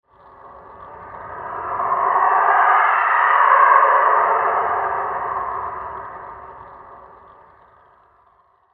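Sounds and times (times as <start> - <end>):
low rising flanger effect: 0.2 - 8.1.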